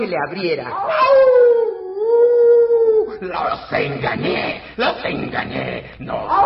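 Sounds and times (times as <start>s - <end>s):
speech: 0.0s - 1.4s, 3.2s - 6.4s
person imitating a wolf howl: 0.9s - 3.2s.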